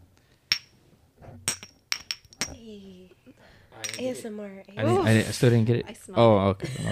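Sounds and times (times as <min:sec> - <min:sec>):
small shot glasses clinking in a toast: 0:00.5 - 0:00.8, 0:01.4 - 0:02.6, 0:03.8 - 0:04.2
speech: 0:02.7 - 0:06.9.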